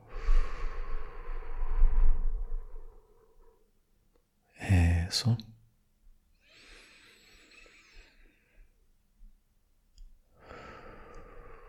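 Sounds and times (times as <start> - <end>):
person taking a cleansing breath in through the nose and out through the mouth: 0.0 - 3.7, 6.4 - 8.8, 10.4 - 11.6
speech: 5.1 - 5.5.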